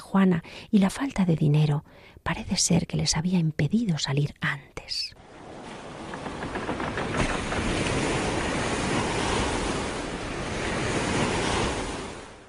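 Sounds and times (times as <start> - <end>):
speech: 0.1 - 5.2
ocean surf at sea: 5.2 - 12.4
wind blowing across the sea: 5.2 - 12.4.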